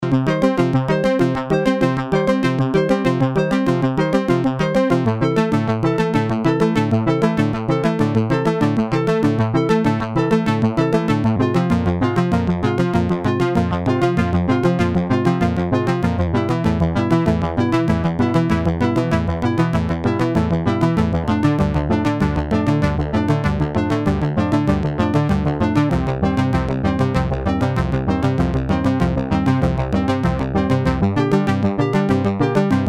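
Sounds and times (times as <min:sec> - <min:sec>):
Syst 700 modular synthesizer: 0:00.0 - 0:32.8.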